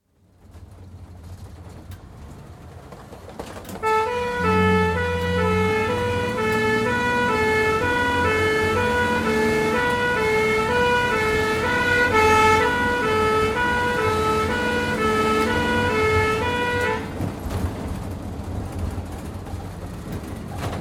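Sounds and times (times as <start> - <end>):
ambulance starting into constant run at speed: 0.2 - 20.8
heavy traffic: 0.2 - 20.8
ambulance two-tone horn siren: 3.8 - 17.2.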